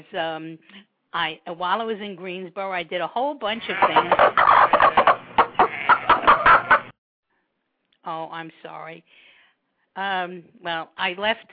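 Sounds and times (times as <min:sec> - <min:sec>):
speech: 0:00.0 - 0:05.0, 0:08.1 - 0:09.3, 0:10.0 - 0:11.5
rubber chicken squawking: 0:03.6 - 0:06.9.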